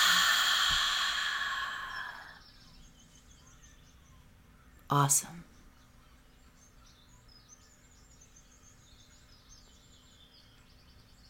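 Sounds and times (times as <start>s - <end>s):
deep breath released slowly in a calm meditation setting: 0.0s - 2.4s
speech: 4.9s - 5.5s.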